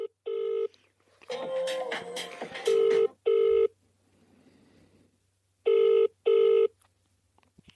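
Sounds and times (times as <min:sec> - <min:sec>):
telephone ringing back on an outgoing call: 0:00.0 - 0:00.7, 0:02.7 - 0:03.7, 0:05.7 - 0:06.7.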